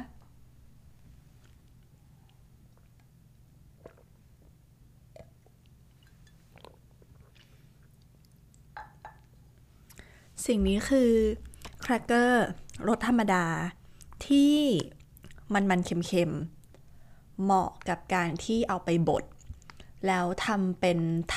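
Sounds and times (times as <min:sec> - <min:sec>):
low steady hum: 0:00.0 - 0:21.3
person sipping water: 0:01.4 - 0:10.2
swallowing: 0:03.7 - 0:05.7, 0:06.5 - 0:10.0
speech: 0:10.4 - 0:16.6, 0:17.4 - 0:19.3, 0:20.0 - 0:21.3.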